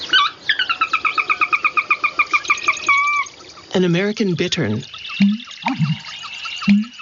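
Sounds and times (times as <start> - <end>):
sora whinny call: 0.0 - 3.4, 4.8 - 7.0
speech: 3.8 - 7.0.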